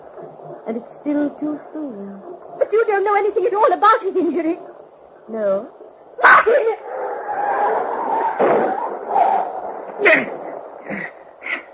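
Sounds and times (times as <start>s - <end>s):
low rumble: 0.0s - 11.7s
speech: 0.7s - 4.7s, 5.3s - 6.8s, 10.0s - 11.0s
dog yelping in pain after being hit by a car in the rain: 6.2s - 6.8s.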